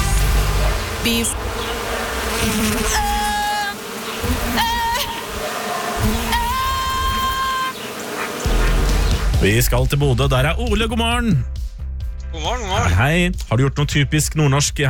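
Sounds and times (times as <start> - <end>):
bees buzzing: 0.0 - 9.4
speech: 1.0 - 1.8, 2.4 - 3.2, 4.2 - 5.1, 9.4 - 11.5, 12.3 - 14.8.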